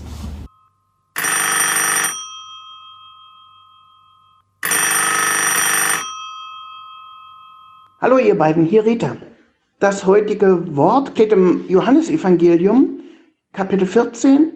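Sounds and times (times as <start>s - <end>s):
telephone ringing for an incoming call: 0.5s - 8.0s
speech: 8.0s - 14.5s.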